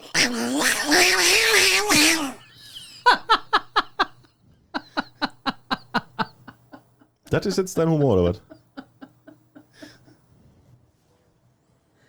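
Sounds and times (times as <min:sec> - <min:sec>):
person imitating fighting cats with a wavering yowl: 0:00.0 - 0:02.4
rhythmic staccato laughter: 0:00.1 - 0:10.0
speech: 0:07.4 - 0:08.5.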